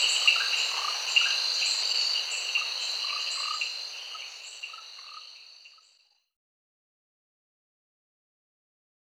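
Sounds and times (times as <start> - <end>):
orange-bellied tree frog Rhacophorus aurantiventris chirping: 0.0 - 6.0
steady high insect chorus: 0.0 - 6.2.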